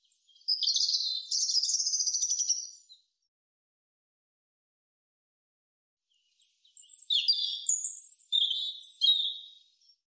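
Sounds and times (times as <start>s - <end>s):
European robin song: 0.0s - 3.1s, 6.1s - 10.0s.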